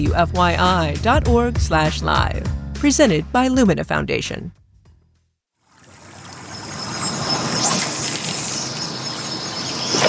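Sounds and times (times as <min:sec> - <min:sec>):
speech: 0:00.0 - 0:04.6
flowing river water: 0:05.6 - 0:10.0.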